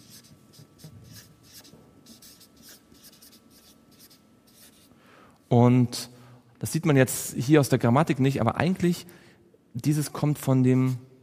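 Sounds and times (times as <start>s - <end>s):
writing on a board during a lecture: 0.0s - 4.9s
speech: 5.5s - 9.2s, 9.8s - 11.1s.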